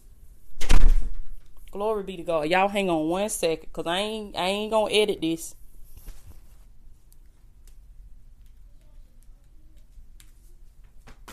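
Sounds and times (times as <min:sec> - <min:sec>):
door slamming shut: 0:00.6 - 0:01.4
speech: 0:01.7 - 0:05.6.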